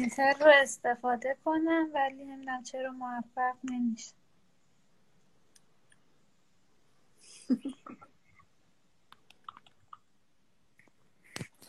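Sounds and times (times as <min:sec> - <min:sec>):
speech: 0:00.0 - 0:04.2, 0:07.5 - 0:08.1
computer mouse clicking: 0:09.1 - 0:10.0.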